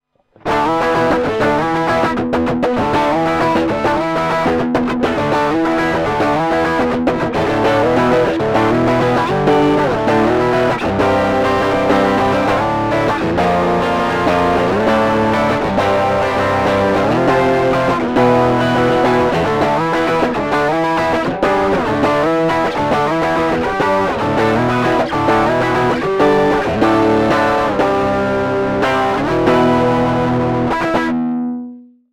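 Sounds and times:
tube overdrive pedal at full drive: 0.5 - 31.6.

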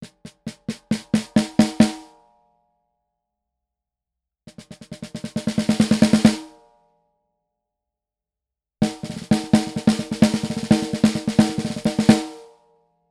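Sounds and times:
snare drum recorded with beyerdynamic TG D35d microphone on stand: 0.0 - 2.1, 4.5 - 6.6, 8.8 - 12.4.

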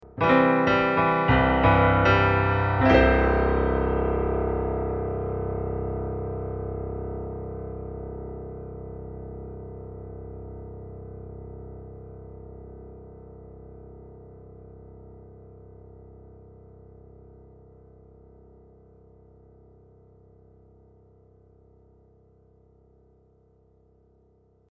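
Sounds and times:
Casio GP-510 digital piano Berlin Grand sound ending: 0.0 - 6.8.

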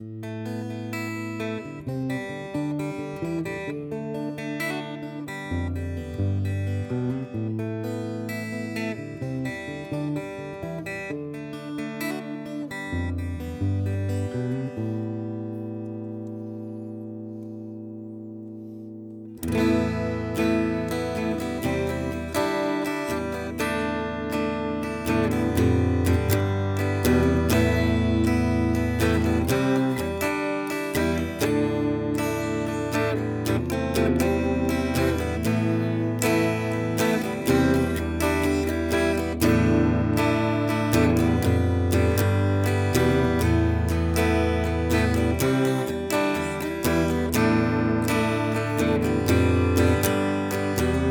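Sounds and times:
Harley Benton CST-24 electric guitar clean tone: 0.0 - 51.0.

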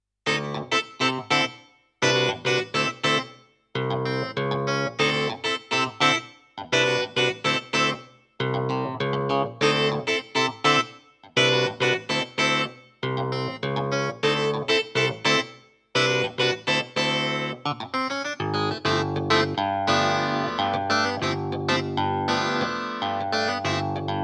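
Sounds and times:
Vivo SX-7 clavinet: 0.3 - 24.2.

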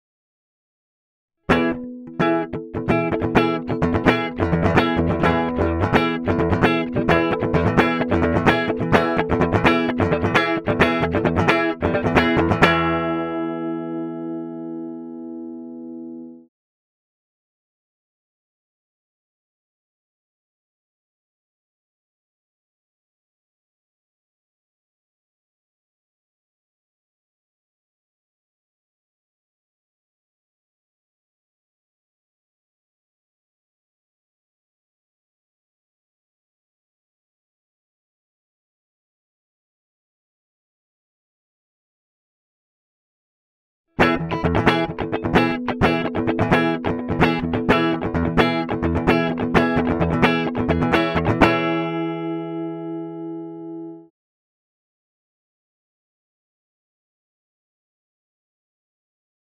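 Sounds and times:
bass guitar through amp simulator without plugin: 1.5 - 16.3, 44.0 - 54.0.

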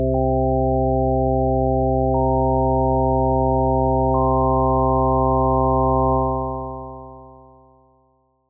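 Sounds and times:
odd-numbered overtone series tones: 0.1 - 7.7.

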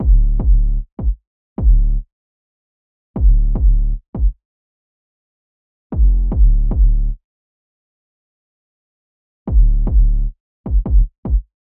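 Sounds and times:
808 drum machine bass drum after EQ: 0.0 - 1.9, 3.2 - 4.4, 6.0 - 7.1, 9.5 - 11.5.

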